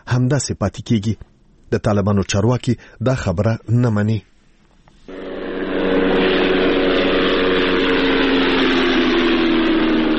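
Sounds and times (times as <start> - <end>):
speech: 0.2 - 4.3
unmanned drone flying overhead with droning engine hum: 5.1 - 10.1.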